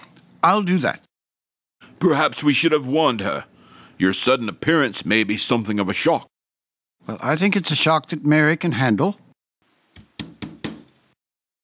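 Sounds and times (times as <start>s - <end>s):
speech: 0.4s - 1.0s, 2.0s - 6.3s, 7.0s - 9.2s
firm knocks on a wooden door: 10.0s - 10.9s.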